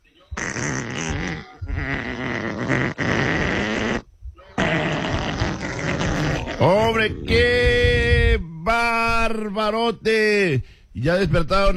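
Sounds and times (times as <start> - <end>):
loud buzzing sputtering fart sounds: 0.4 - 8.1
speech: 6.6 - 7.8, 8.7 - 11.7.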